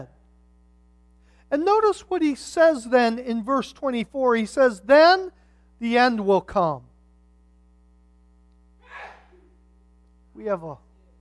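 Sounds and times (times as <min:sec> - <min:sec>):
faint steady electrical hum: 0:00.0 - 0:11.2
speech: 0:01.5 - 0:06.9, 0:10.4 - 0:10.8
woman sneezing: 0:08.8 - 0:09.6.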